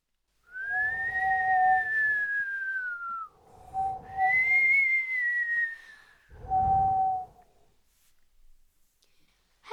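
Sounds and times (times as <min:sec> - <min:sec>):
whistling wind across the sea: 0:00.5 - 0:07.6.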